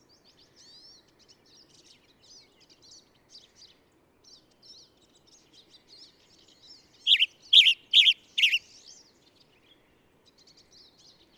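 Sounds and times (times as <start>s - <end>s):
bird singing bright warbling chirps: 7.1s - 8.6s.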